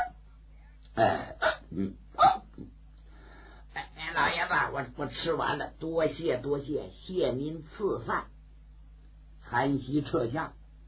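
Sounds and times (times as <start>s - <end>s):
person imitating burps: 0.9s - 2.8s
speech: 1.0s - 2.0s, 4.2s - 8.3s, 9.5s - 10.6s.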